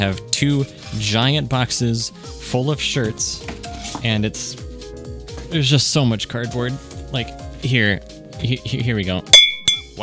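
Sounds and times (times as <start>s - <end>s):
speech: 0.0s - 4.6s, 5.5s - 9.4s
two ceramic mugs clinking together: 9.4s - 10.0s.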